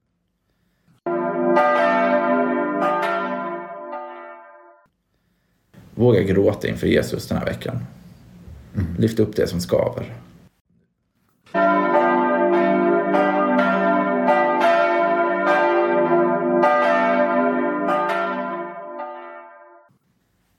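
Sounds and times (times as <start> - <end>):
church bells ringing: 1.1 - 4.8, 11.6 - 19.9
speech: 6.0 - 8.0, 9.0 - 10.3.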